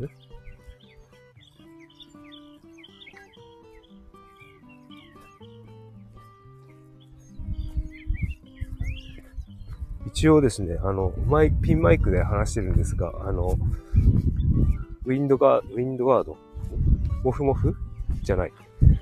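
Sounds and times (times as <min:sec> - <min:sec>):
speech: 0:00.0 - 0:00.2, 0:10.2 - 0:14.3, 0:15.1 - 0:16.5, 0:17.2 - 0:18.7
birds chirping outdoors: 0:00.0 - 0:18.9.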